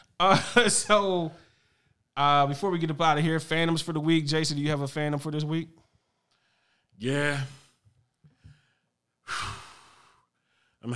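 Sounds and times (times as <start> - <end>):
speech: 0.2 - 1.4, 2.2 - 5.8, 7.0 - 7.6
heavy breathing: 5.8 - 10.9.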